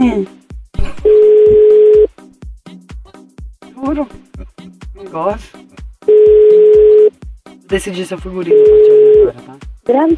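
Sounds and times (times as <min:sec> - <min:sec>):
telephone ringback tone on an unanswered call: 0:01.1 - 0:02.1, 0:06.1 - 0:07.1, 0:08.5 - 0:09.3
speech: 0:05.2 - 0:05.6, 0:07.7 - 0:10.1.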